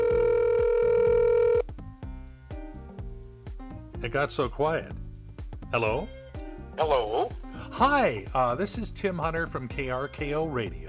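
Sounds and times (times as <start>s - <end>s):
steady telephone dial tone: 0.0s - 1.6s
low rhythmic thump: 0.0s - 10.0s
speech: 4.0s - 5.0s, 5.7s - 6.2s, 6.8s - 10.8s.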